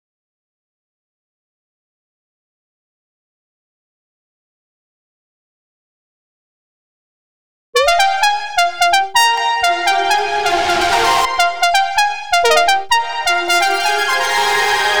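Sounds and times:
128 BPM F minor house synth lead loop: 7.8s - 14.9s.

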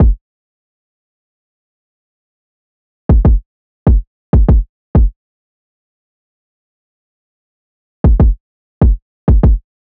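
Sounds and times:
kick drum loop: 0.0s - 0.2s, 3.1s - 5.1s, 8.0s - 9.6s.

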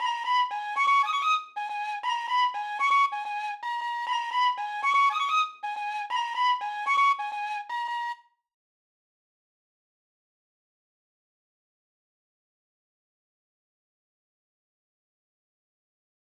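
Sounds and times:
118 BPM G sharp minor trap flute melody loop: 0.0s - 8.2s.

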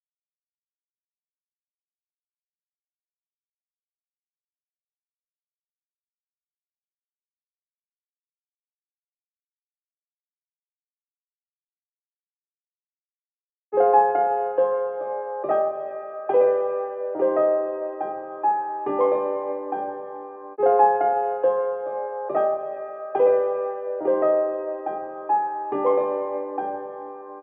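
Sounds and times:
C minor piano melody loop: 13.8s - 27.4s.

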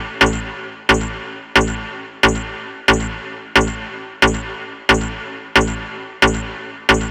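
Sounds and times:
techno synth loop: 0.0s - 7.0s.

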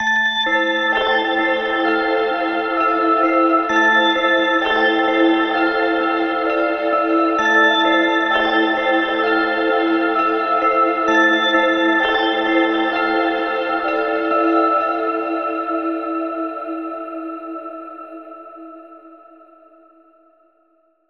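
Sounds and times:
short bells in A minor: 0.0s - 16.5s.

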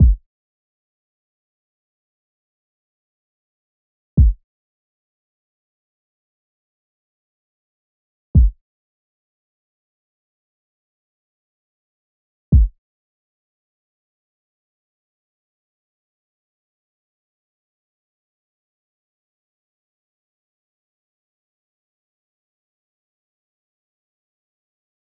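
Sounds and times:
kick drum loop in A minor: 0.0s - 0.2s, 4.2s - 4.4s, 8.4s - 8.6s.

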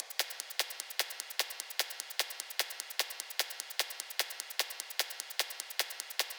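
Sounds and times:
shaker percussion loop: 0.0s - 6.3s.

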